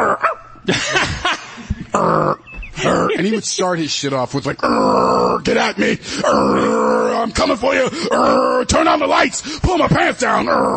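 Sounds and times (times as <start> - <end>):
person imitating dog growl: 0.0 - 0.4, 1.9 - 3.2, 4.6 - 5.4, 6.2 - 7.2, 8.0 - 8.7, 10.4 - 10.7
laughter: 0.6 - 2.0
speech: 0.7 - 1.0, 3.2 - 10.7.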